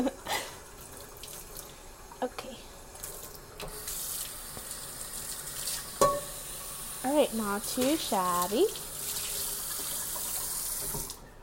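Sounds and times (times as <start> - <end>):
running tap water splashing into a sink while washing dishes: 0.6 - 11.3
dishes clinking while being handled: 6.0 - 6.4
speech: 7.2 - 8.9.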